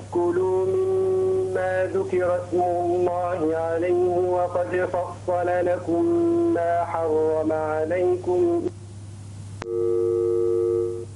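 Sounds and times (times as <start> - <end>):
constant low hum: 0.0 - 11.1
speech: 0.1 - 0.9, 1.6 - 8.7
telephone busy tone after a dropped call: 9.6 - 11.1.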